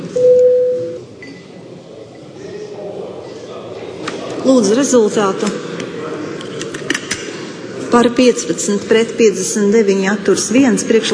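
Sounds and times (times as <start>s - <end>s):
low murmur: 0.0s - 11.1s
electronic bell tone calling members to a vote in a parliament chamber: 0.2s - 1.0s
speech: 4.5s - 5.6s, 7.9s - 11.1s.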